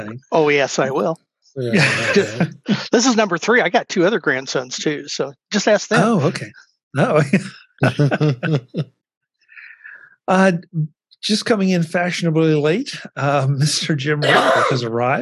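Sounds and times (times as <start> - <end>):
speech: 0.0 - 9.0, 10.3 - 15.2
person sneezing: 1.6 - 2.8, 6.0 - 8.8, 12.9 - 15.2
laughter: 1.6 - 3.3, 5.9 - 8.8, 9.6 - 15.2.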